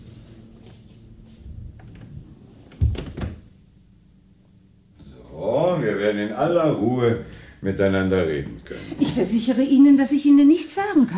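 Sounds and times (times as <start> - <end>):
quiet shuffling: 0.4 - 2.8
door shutting with a thud: 2.7 - 3.5
speech: 6.1 - 11.1.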